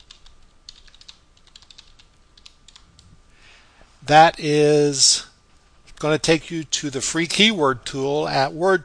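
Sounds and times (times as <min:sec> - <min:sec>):
typing on a computer keyboard: 0:00.0 - 0:03.1
speech: 0:04.1 - 0:05.3, 0:06.0 - 0:08.8.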